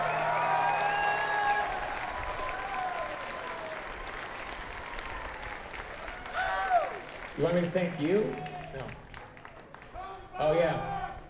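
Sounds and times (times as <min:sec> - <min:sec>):
crowd cheering and whooping: 0:00.0 - 0:07.1
audience clapping: 0:00.0 - 0:10.4
speech: 0:07.4 - 0:09.0, 0:10.4 - 0:11.0.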